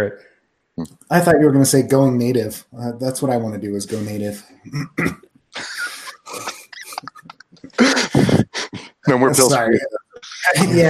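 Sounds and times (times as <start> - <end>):
speech: 0.0 - 7.2, 9.1 - 10.8
person in a coughing fit with harsh rasping coughs and hacks: 4.7 - 7.2, 7.8 - 8.5
laughter: 5.6 - 10.8.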